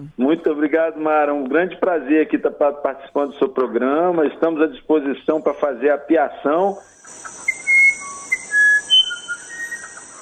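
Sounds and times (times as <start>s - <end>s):
speech: 0.0s - 7.4s
faint steady hiss: 0.0s - 10.1s
bird call whistle imitating birdsong: 7.1s - 10.1s.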